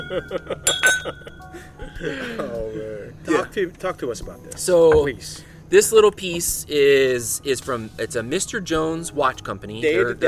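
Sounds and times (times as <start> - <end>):
glasses clinking in a toast: 0.0 - 1.5
speech: 0.1 - 10.2.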